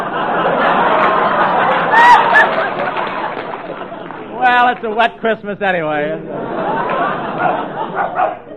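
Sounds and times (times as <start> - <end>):
laughter: 0.0 - 8.5
speech: 4.5 - 6.8, 7.4 - 8.4
dog barks: 7.4 - 8.5.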